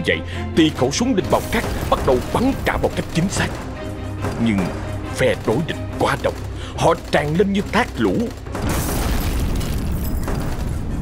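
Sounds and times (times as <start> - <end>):
speech: 0.0 - 8.9
mortar shell exploding in combat: 1.2 - 5.3, 8.5 - 10.9.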